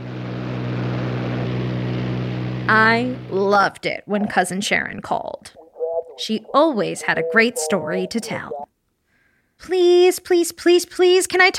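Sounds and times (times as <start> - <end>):
propeller airplane droning: 0.0 - 3.6
speech: 2.7 - 5.6, 6.2 - 8.7, 9.6 - 11.5.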